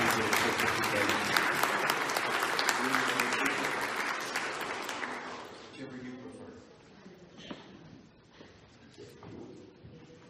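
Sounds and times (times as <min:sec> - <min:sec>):
large group applauding: 0:00.0 - 0:05.7.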